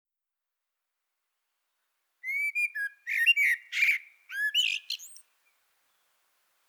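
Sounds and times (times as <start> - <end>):
common blackbird Turdus merula singing: 2.2 - 5.3.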